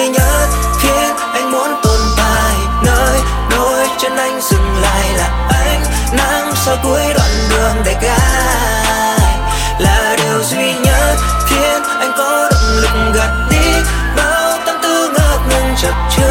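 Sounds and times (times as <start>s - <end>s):
bouncing bass ringtone in youth pop style: 0.2s - 16.3s.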